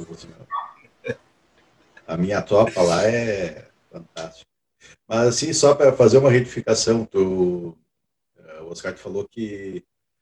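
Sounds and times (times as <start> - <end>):
speech: 0.0 - 0.4, 2.1 - 4.0, 5.1 - 7.8, 8.7 - 9.9
short sharp dog barks: 0.4 - 0.9.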